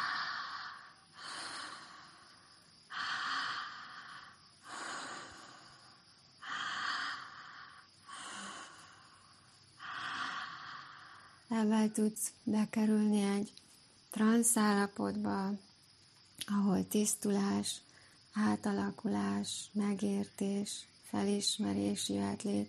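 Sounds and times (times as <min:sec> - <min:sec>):
strong inhales and relaxed exhales through the mouth: 0:00.0 - 0:11.5
speech: 0:11.5 - 0:13.6, 0:14.2 - 0:15.7, 0:16.5 - 0:22.6.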